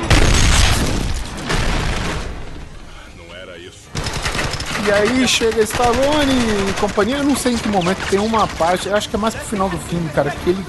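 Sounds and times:
loud booming gunshot blasts with rumbling tails: 0.1s - 2.4s
speech: 4.9s - 10.6s.

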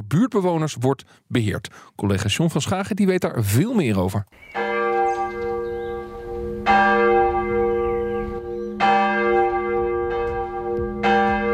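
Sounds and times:
speech: 0.1s - 5.5s
church bells ringing from the tower of a 1658 village church in Hensbroek: 4.5s - 11.5s.

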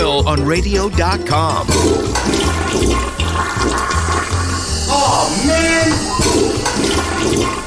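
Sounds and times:
speech: 0.2s - 3.8s, 4.9s - 6.6s
toilet flushing: 1.4s - 7.6s.

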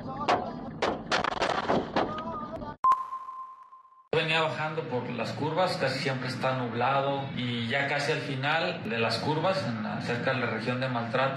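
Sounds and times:
gunshots inside a car: 0.3s - 2.2s
sustained electronic beep tone: 2.8s - 4.1s
speech: 4.2s - 11.3s.

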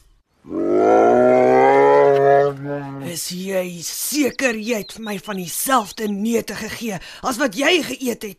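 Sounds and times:
bear growling angrily: 0.4s - 3.3s
speech: 3.2s - 8.3s.

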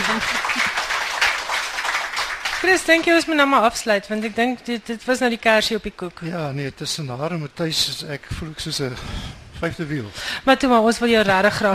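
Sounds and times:
audience applause for a reading performance: 0.0s - 3.3s
speech: 2.6s - 11.7s.

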